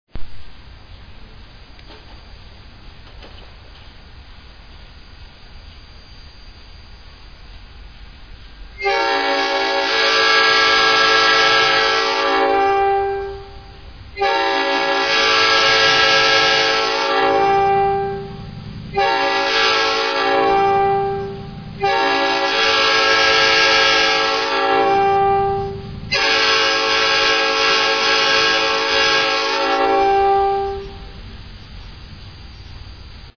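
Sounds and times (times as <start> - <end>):
Nathan P5 horn: 8.8 - 31.1.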